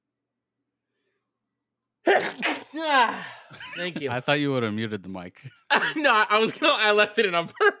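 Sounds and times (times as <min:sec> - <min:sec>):
loud sneeze: 0:02.1 - 0:03.4
speech: 0:02.2 - 0:07.7
laughter: 0:03.1 - 0:04.4, 0:05.5 - 0:07.7.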